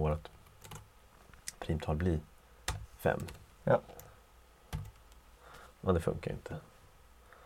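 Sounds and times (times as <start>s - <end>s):
low steady hum: 0.0s - 7.4s
speech: 0.1s - 0.4s, 1.7s - 2.3s, 3.0s - 4.0s, 5.8s - 6.7s
typing code on a computer keyboard: 0.4s - 0.8s, 2.7s - 4.1s, 4.7s - 5.2s.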